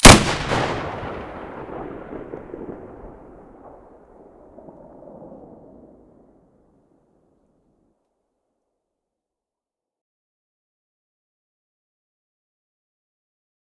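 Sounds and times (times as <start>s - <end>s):
SV-98 sniper rifle muzzle blast: 0.0s - 2.9s.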